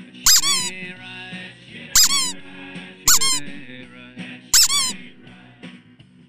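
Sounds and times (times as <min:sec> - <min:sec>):
squeaky toy being squeezed: 0:00.3 - 0:01.0, 0:02.0 - 0:03.9, 0:04.6 - 0:05.3.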